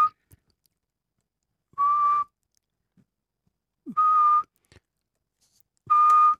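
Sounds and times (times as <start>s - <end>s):
person whistling an imitation of a Eurasian pygmy owl call: 0.0s - 0.2s, 1.8s - 2.4s, 3.9s - 4.6s, 5.9s - 6.3s.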